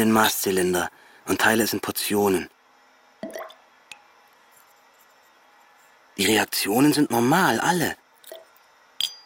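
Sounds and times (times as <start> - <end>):
speech: 0.0 - 2.5, 6.2 - 8.0
drop of concentrated acid falling onto a blood sample: 3.2 - 3.6.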